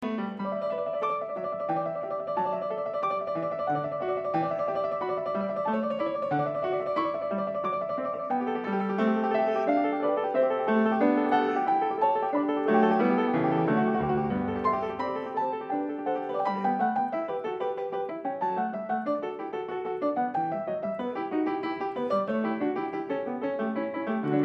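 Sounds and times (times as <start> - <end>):
two pianists playing a piano piece: 0.0 - 24.4.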